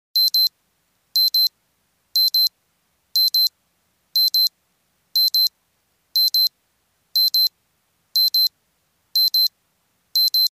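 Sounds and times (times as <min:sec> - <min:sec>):
electronic wristwatch alarm signal: 0:00.2 - 0:00.5, 0:01.2 - 0:01.5, 0:02.2 - 0:02.5, 0:03.2 - 0:03.5, 0:04.2 - 0:04.5, 0:05.2 - 0:05.5, 0:06.2 - 0:06.5, 0:07.2 - 0:07.5, 0:08.2 - 0:08.5, 0:09.2 - 0:09.5, 0:10.2 - 0:10.5.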